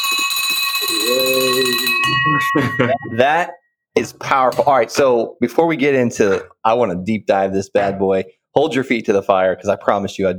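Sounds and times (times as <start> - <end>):
victory bell ringing: 0.0 - 3.6
low voice murmuring: 1.1 - 1.8
speech: 2.2 - 10.3.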